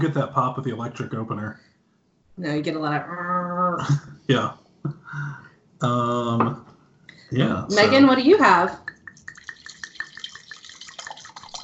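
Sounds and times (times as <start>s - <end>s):
laughter: 0.0s - 1.5s, 3.8s - 6.5s, 7.4s - 8.2s
speech: 0.0s - 1.7s, 2.4s - 6.7s, 7.3s - 8.9s
drink pouring into a glass: 8.8s - 11.6s.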